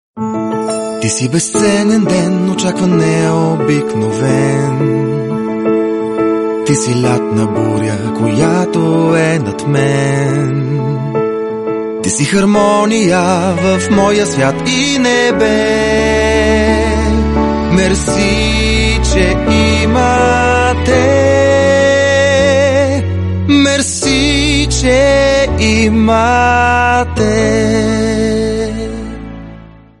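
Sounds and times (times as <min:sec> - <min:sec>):
Bulgarian man singing: 0:00.3 - 0:05.7, 0:06.5 - 0:11.4, 0:12.0 - 0:29.3.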